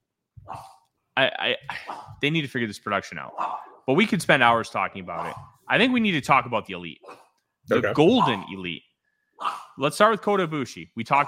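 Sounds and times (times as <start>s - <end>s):
speech: 1.2s - 11.2s
dog barking to play: 3.4s - 3.8s, 5.2s - 5.5s, 7.0s - 7.3s, 8.2s - 8.5s, 9.4s - 9.7s.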